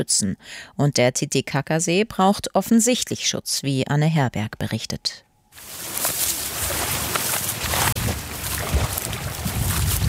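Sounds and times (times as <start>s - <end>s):
speech: 0.0s - 5.9s
wind blowing across a reedy lake shoreline: 5.6s - 10.0s.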